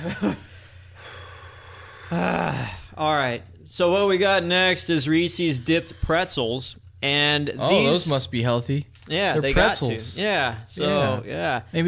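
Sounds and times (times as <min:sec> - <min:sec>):
speech: 0:00.0 - 0:00.5, 0:02.1 - 0:11.8
deep breath after eating a great deal of chocolate: 0:00.3 - 0:03.0.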